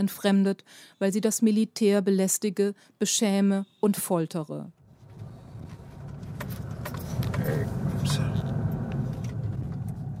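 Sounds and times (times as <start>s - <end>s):
speech: 0.0s - 4.8s
car engine rumbling, heard from inside: 4.8s - 10.1s.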